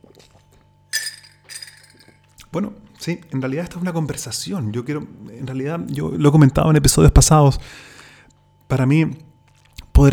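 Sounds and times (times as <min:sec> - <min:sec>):
ceramic coffee cup clinking and scraping: 0:00.9 - 0:02.3
speech: 0:02.5 - 0:07.9, 0:08.7 - 0:09.2.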